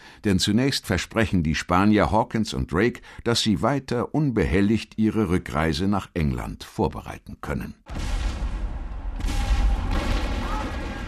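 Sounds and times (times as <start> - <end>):
speech: 0.2 - 8.2
cannon fire from a Spanish flotilla: 7.9 - 11.0.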